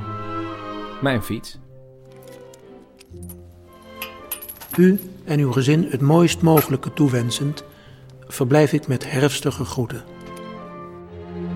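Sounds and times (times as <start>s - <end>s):
speech: 1.0s - 1.6s, 4.8s - 7.7s, 8.3s - 10.1s
small metal keys jingling and clinking: 2.1s - 5.3s, 6.6s - 6.9s.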